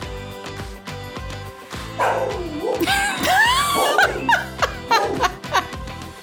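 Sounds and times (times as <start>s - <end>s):
pit bull barking: 2.0s - 2.9s
laughter: 2.8s - 5.8s.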